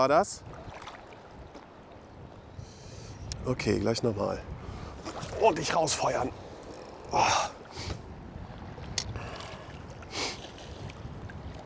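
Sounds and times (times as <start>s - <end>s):
speech: 0.0s - 0.5s, 3.4s - 4.5s, 5.4s - 6.4s, 7.1s - 7.6s
sea wave splashing: 0.0s - 2.1s, 3.6s - 11.6s
wind buffeting the microphone: 0.0s - 11.6s
sea water washing around a wading angler fishing in the sea: 0.4s - 2.5s, 4.6s - 11.6s.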